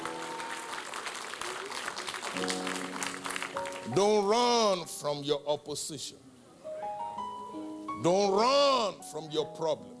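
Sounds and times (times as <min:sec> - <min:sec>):
congregation clapping: 0:00.0 - 0:04.6
speech: 0:03.9 - 0:06.3, 0:08.0 - 0:09.9.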